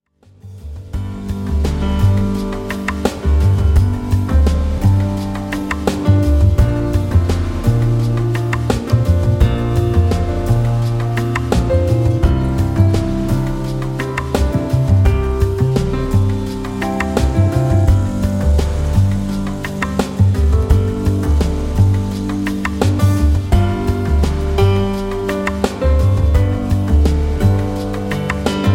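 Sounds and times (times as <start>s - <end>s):
lounge piano music: 0.3s - 28.7s.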